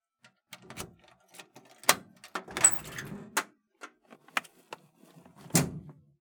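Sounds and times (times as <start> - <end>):
key unlocking a locker: 0.5 - 3.2
locker door opening: 1.8 - 3.3
locker door closing: 1.9 - 3.2.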